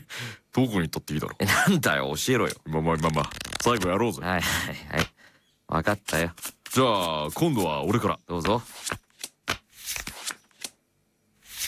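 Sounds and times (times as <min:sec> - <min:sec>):
speech: 0:00.5 - 0:05.1, 0:05.7 - 0:09.0
playing cards being shuffled and drawn during a trading card game duel: 0:02.3 - 0:04.2, 0:06.0 - 0:10.8, 0:11.4 - 0:11.6.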